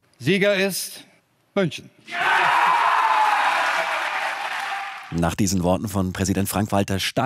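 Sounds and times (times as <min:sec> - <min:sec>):
speech: 0:00.2 - 0:02.5, 0:05.1 - 0:07.2
crowd clapping: 0:02.4 - 0:05.2.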